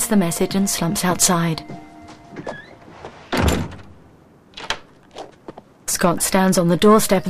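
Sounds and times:
speech: 0.1 - 1.8, 6.0 - 7.2
front door shutting with a thud: 2.4 - 4.0
front door knocking and rattling as it settles: 3.3 - 4.0.

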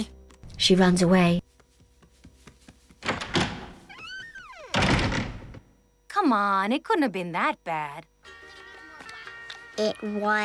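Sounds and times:
speech: 0.0 - 1.5, 6.3 - 8.1, 9.8 - 10.4
door slamming shut with a heavy thud: 3.0 - 5.6.

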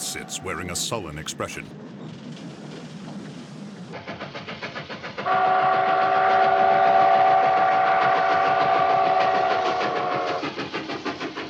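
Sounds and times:
speech: 0.1 - 2.7
train whistle while pulling into a station at night: 5.2 - 10.6.

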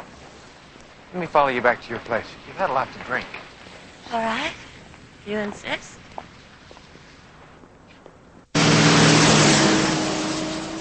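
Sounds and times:
tires rolling over wet pavement on a dark wet street: 0.0 - 4.6, 8.6 - 10.7
speech: 1.1 - 3.5, 4.1 - 4.6, 5.2 - 6.0
car engine hum at night: 8.6 - 10.7.

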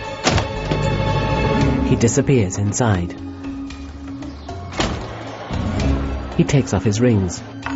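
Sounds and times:
heavy roof access door opening with a clunk at the top of a grandstand stairwell: 0.2 - 1.8, 4.7 - 6.0
speech: 1.9 - 3.3, 6.4 - 7.6.

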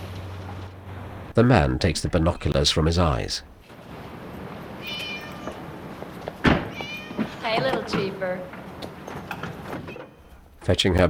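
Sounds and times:
steady hiss: 0.0 - 11.0
speech: 1.4 - 3.5, 7.6 - 8.6, 10.6 - 11.0
cat meowing from a first-floor window: 4.8 - 5.8, 6.6 - 8.0
loud dull thud: 6.3 - 8.6.

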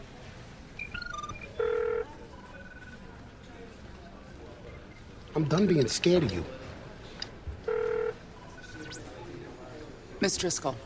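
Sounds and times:
video phone electronic dialing beeps: 0.8 - 3.0, 7.7 - 9.2
video phone ringing tone: 0.8 - 3.1, 7.7 - 9.2
speech: 5.4 - 6.6, 10.2 - 10.8.

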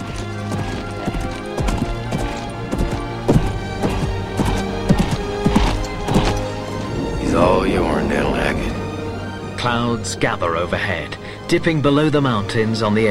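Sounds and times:
black horse with rider galloping over fields: 0.0 - 9.1
speech: 9.8 - 13.0.

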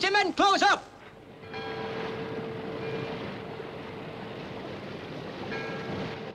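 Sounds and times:
constant low drone of a ship: 0.9 - 6.3
rushing water as a ship ploughs over grey waves: 1.0 - 6.3
wind noise: 1.1 - 6.3.

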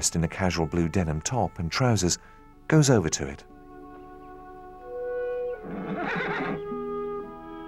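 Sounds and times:
speech: 0.0 - 3.5
horse tethered to a tree neighing: 5.6 - 6.7.

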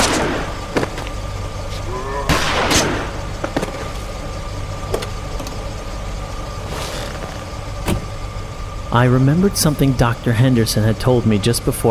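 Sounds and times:
gunshots: 0.0 - 0.6, 2.3 - 3.2
low engine-like hum: 0.0 - 11.8
speech: 9.0 - 11.8.

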